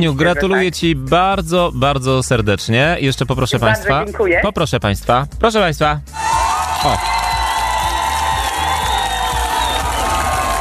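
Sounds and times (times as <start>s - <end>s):
speech: 0.0s - 6.2s, 6.8s - 7.2s
game show studio audience clapping: 6.2s - 10.5s.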